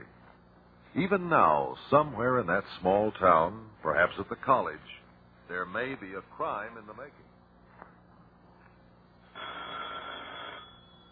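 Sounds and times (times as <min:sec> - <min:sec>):
quiet hiss: 0:00.0 - 0:11.0
speech: 0:01.0 - 0:07.3
old-fashioned telephone bell ringing: 0:09.3 - 0:11.0.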